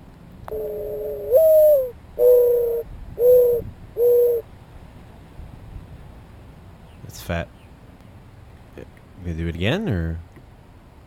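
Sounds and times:
faint high whine: 0.5s - 4.4s
mourning dove coo call: 0.5s - 4.4s
speech: 7.3s - 7.6s, 9.3s - 10.3s.

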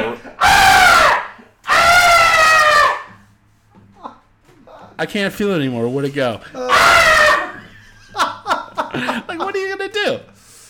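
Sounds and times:
person screaming: 0.4s - 3.2s, 6.6s - 7.6s
speech: 5.0s - 6.7s, 9.0s - 10.6s
laughter: 6.4s - 9.7s.

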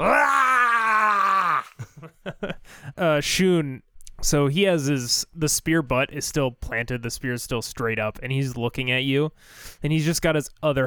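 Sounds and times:
performed in-character scream: 0.0s - 1.9s
speech: 2.3s - 10.8s.

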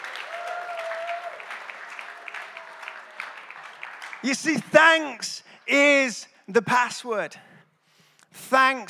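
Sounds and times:
audience applauding: 0.0s - 5.8s
speech: 4.2s - 7.5s, 8.5s - 8.8s.

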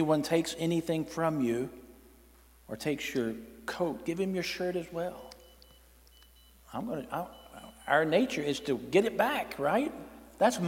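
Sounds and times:
speech: 0.0s - 1.8s, 2.7s - 5.3s, 6.7s - 10.6s
low steady hum: 0.0s - 10.6s
high-pitched electronic beeps: 5.2s - 8.1s.

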